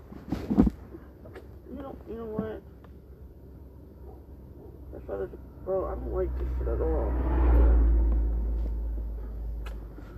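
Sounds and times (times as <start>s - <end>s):
speech: 2.2s - 2.7s, 5.1s - 7.9s
car engine rumbling past: 4.3s - 10.1s.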